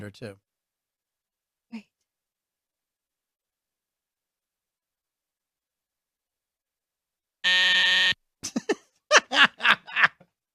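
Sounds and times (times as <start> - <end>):
speech: 0.0 - 0.5, 1.7 - 1.9
loud harsh buzzer signalling time is up: 7.4 - 8.2
bursts of laughter: 8.4 - 10.3.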